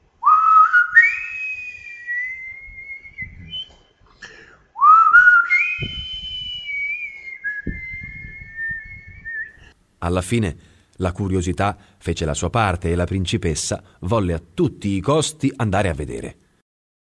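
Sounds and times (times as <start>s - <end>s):
person whistling a tune: 0.2s - 4.0s, 4.8s - 9.7s
speech: 10.0s - 16.4s.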